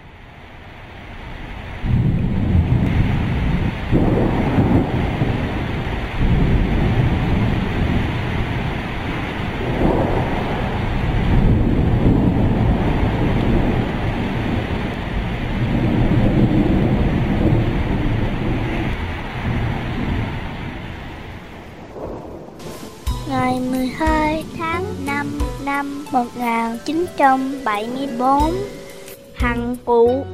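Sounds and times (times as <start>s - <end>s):
rain hissing: 0.0s - 30.0s
heavy wind gusting: 0.4s - 29.6s
deep rolling thunder over a camp on a rocky slope: 1.4s - 25.3s
speech: 26.2s - 28.8s, 29.4s - 30.3s.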